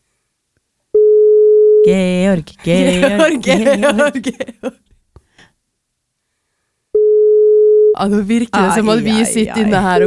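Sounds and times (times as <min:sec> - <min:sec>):
telephone tone of an unanswered call: 0:01.0 - 0:01.9, 0:07.0 - 0:08.0
speech: 0:01.8 - 0:04.9, 0:08.0 - 0:10.0.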